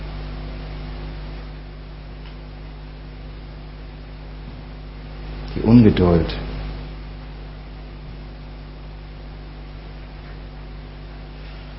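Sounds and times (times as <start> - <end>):
electric fans whooshing: 0.0 - 11.7
speech: 5.6 - 6.5.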